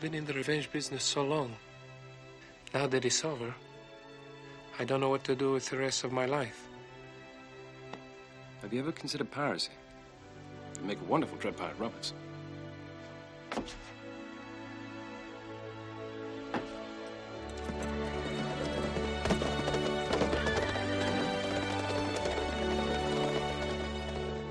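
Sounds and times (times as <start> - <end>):
speech: 0.0 - 1.7, 2.7 - 3.7, 4.8 - 6.7, 8.6 - 9.8, 10.8 - 12.2, 13.6 - 13.8
orchestral music: 3.2 - 24.4
horses galloping away: 16.6 - 24.4
horses whinnying: 17.5 - 24.4.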